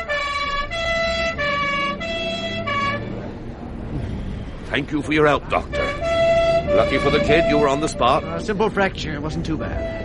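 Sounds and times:
ambulance siren in a two-tone wail: 0.0 - 3.3, 5.6 - 8.5, 9.7 - 10.0
low rumble of traffic: 0.0 - 10.0
speech: 4.7 - 5.8, 6.7 - 10.0.

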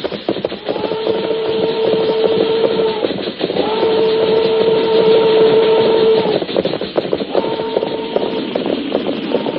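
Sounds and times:
train rumbling along the tracks: 0.0 - 9.5
train steam whistle blasts: 0.7 - 6.4, 7.3 - 8.6.

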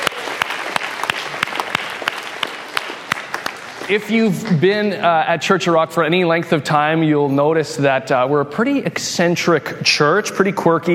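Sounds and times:
sharp loud hand claps: 0.0 - 3.8
church crowd applauding newcomers: 0.0 - 4.4
speech: 3.9 - 10.9.

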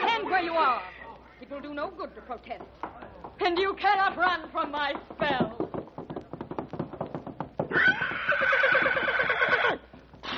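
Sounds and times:
speech: 0.4 - 5.6
quick clip-clopping horse hoofbeats: 1.7 - 10.3
loud shrill horse whinny: 7.7 - 10.3.

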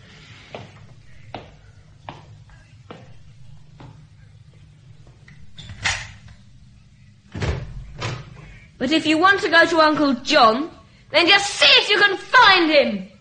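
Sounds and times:
door opening: 5.2 - 6.4
speech: 8.8 - 13.1.

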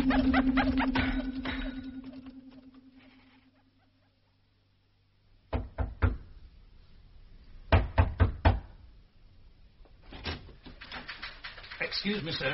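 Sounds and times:
low humming drone: 0.0 - 3.8
knocking on a door: 5.5 - 6.2, 7.7 - 8.7
speech: 12.0 - 12.5.

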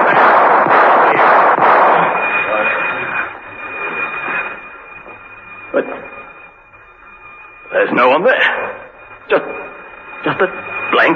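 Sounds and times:
warning gunshots fired down a corridor: 0.0 - 2.9
thin steady high whine: 0.0 - 11.1
speech: 8.0 - 8.6, 9.3 - 9.6, 10.2 - 11.1.

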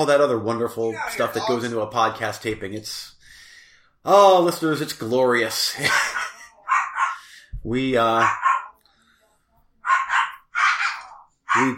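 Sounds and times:
speech: 0.0 - 3.2, 4.0 - 6.3, 7.6 - 8.5, 11.6 - 11.7
laughter: 5.6 - 6.7
dog barking: 5.9 - 7.3, 8.2 - 8.8, 9.8 - 11.7.

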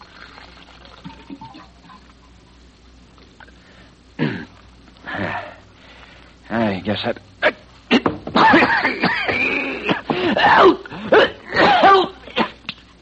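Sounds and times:
water cooler pouring a drink with gurgling water: 0.0 - 2.6
soft hiss of room noise: 0.0 - 13.0
speech: 6.5 - 7.3.

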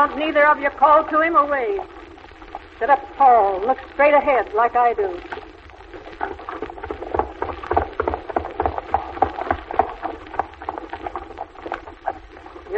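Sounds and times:
speech: 0.0 - 2.0, 2.8 - 5.4
horse hooves clip-clopping: 6.2 - 12.7.

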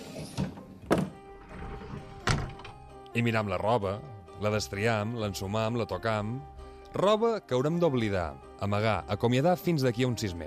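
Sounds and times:
wooden wardrobe door opening: 0.2 - 2.9
speech: 3.2 - 10.4.

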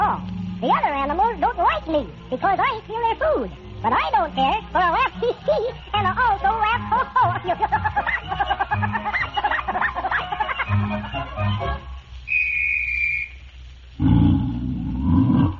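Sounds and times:
speech: 0.6 - 8.9
laughter: 4.8 - 11.6
high whistle: 12.2 - 13.5
female tiger roaring: 14.0 - 15.5.

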